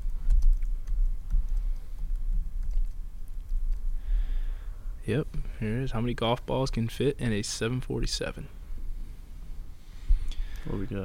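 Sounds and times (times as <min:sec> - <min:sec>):
typing on a computer keyboard: 0:00.0 - 0:03.8
low steady rumble: 0:00.0 - 0:11.0
speech: 0:05.0 - 0:08.6, 0:10.7 - 0:11.0.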